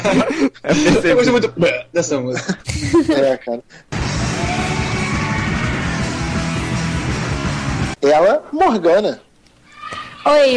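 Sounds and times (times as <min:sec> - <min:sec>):
laughter: 0:00.0 - 0:01.6, 0:02.3 - 0:03.5
speech: 0:00.0 - 0:04.0, 0:08.0 - 0:09.3, 0:10.2 - 0:10.5
dense steady wash of loud noise: 0:03.9 - 0:08.0
person yelling in the background: 0:04.3 - 0:05.8.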